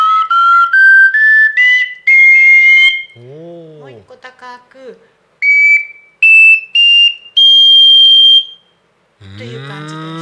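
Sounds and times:
triple ocarina whistling notes: 0:00.0 - 0:03.6, 0:05.4 - 0:10.1
speech: 0:04.5 - 0:05.2.

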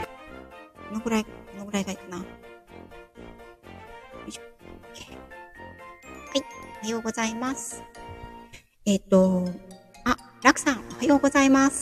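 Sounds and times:
speech: 0:00.9 - 0:03.0, 0:04.3 - 0:04.5, 0:06.8 - 0:08.0, 0:08.9 - 0:09.7, 0:10.6 - 0:11.8
light tinkling background music with chiming notes over a steady beat: 0:04.2 - 0:08.6, 0:09.2 - 0:11.8.

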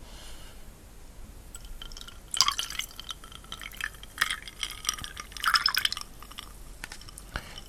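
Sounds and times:
bright clinks of a glass: 0:01.6 - 0:07.6
tonic water fizzy crackling: 0:01.6 - 0:07.6
tonic water pouring into a glass: 0:01.6 - 0:07.6.

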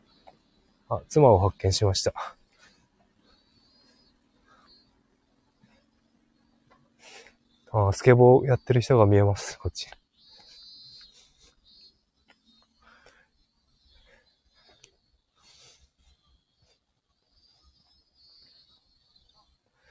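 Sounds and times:
cicadas buzzing at Yoichi port in Hokkaido Japan: 0:00.0 - 0:19.8
speech: 0:00.9 - 0:02.4, 0:07.7 - 0:10.0.

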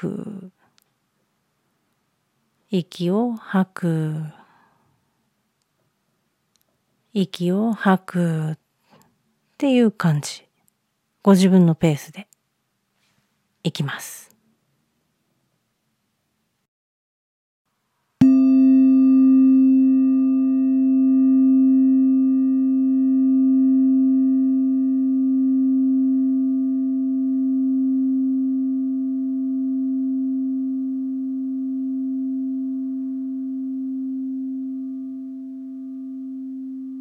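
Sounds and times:
speech: 0:00.0 - 0:00.3, 0:02.7 - 0:04.4, 0:07.1 - 0:08.6, 0:09.6 - 0:10.5, 0:11.2 - 0:12.3, 0:13.6 - 0:14.3
rin Buddhist singing bowl struck and ringing: 0:18.2 - 0:36.9.

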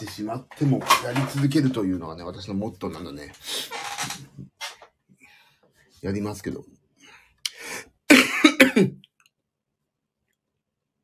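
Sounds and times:
speech: 0:00.1 - 0:04.2, 0:06.0 - 0:06.8, 0:08.8 - 0:09.0
harsh raspy coughs: 0:08.1 - 0:09.0.

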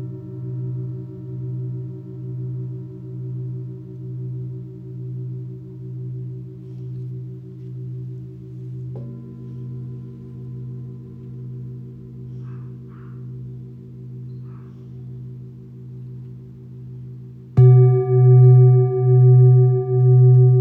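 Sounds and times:
Tibetan singing bowls humming in a low drone: 0:00.0 - 0:20.5
faint high chirps: 0:09.1 - 0:15.4.

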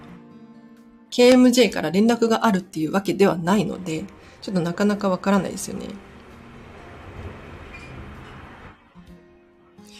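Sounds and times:
speech: 0:01.1 - 0:06.1
outdoor traffic rumbling picked up by microphone: 0:05.6 - 0:08.8.

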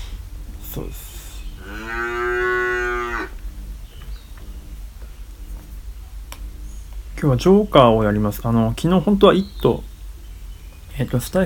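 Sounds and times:
forest birdsong: 0:00.0 - 0:11.4
speech: 0:00.7 - 0:02.2, 0:07.2 - 0:09.9, 0:11.0 - 0:11.4
cow mooing: 0:01.6 - 0:03.4.

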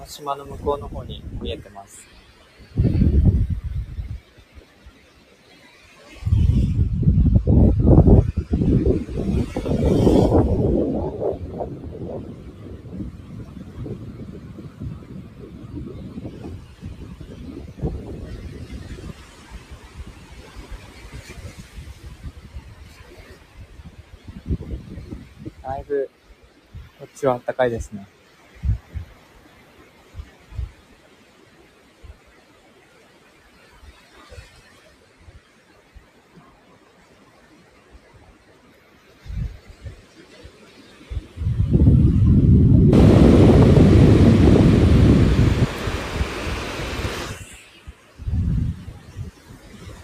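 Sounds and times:
speech: 0:00.0 - 0:03.0, 0:08.9 - 0:11.3, 0:27.2 - 0:28.2
gusty seaside wind buffeting the microphone near Enoshima Japan: 0:00.0 - 0:04.8, 0:06.0 - 0:26.0, 0:27.8 - 0:30.9, 0:39.1 - 0:50.0
waves washing in at the seaside near Enoshima Japan: 0:00.0 - 0:50.0.

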